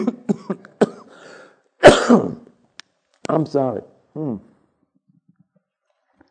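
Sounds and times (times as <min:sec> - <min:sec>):
person clearing throat: 0:00.0 - 0:01.2, 0:01.8 - 0:02.5
person with a tickle in the throat coughing: 0:00.0 - 0:02.5
speech: 0:03.4 - 0:04.5.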